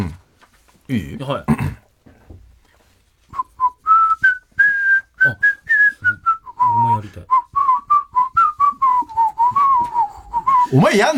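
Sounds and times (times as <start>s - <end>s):
speech: 0.9s - 1.7s, 10.7s - 11.1s
person whistling a short melody: 3.3s - 10.8s.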